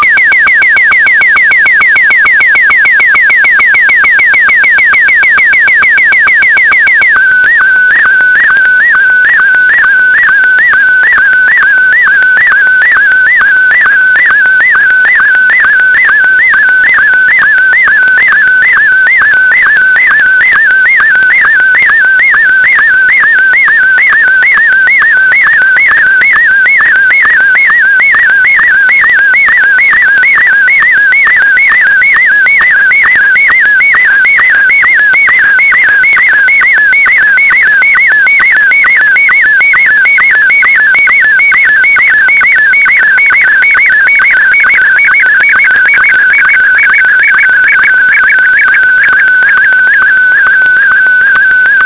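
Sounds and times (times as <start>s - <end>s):
SSTV Martin 1 mode signal tones: 0.0s - 51.8s.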